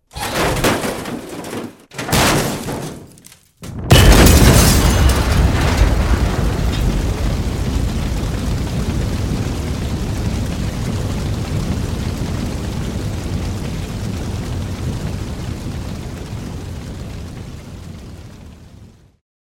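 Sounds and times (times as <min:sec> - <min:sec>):
car being pushed into a pit: 0:00.1 - 0:03.2
car exploding: 0:02.0 - 0:19.2.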